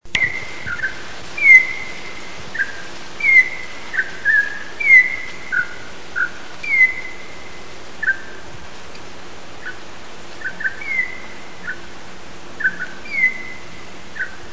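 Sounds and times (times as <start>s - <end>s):
campo troupial song recorded in Brazil: 0.1s - 7.3s, 10.4s - 11.8s, 12.6s - 14.4s.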